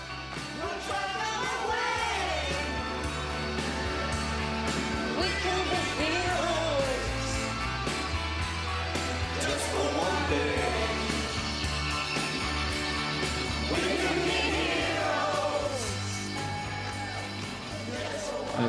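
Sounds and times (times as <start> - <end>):
1977 rock song in a British advert soundtrack: 0.0 - 18.6
many people in a block of flats singing along from their windows: 0.6 - 3.4, 9.4 - 11.6, 13.5 - 16.2, 17.7 - 18.6
cheers and whoops: 14.4 - 18.3.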